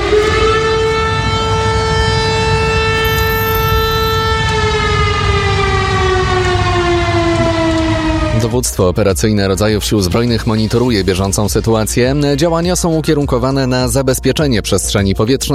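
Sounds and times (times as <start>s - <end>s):
civil defense air raid siren wailing in Lublin Poland: 0.0s - 8.8s
speech: 8.5s - 15.5s.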